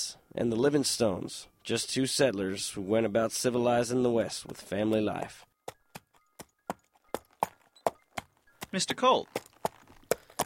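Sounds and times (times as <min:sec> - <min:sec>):
speech: 0:00.0 - 0:05.5, 0:08.7 - 0:09.5
horse hooves clip-clopping at a walking pace: 0:04.4 - 0:10.4.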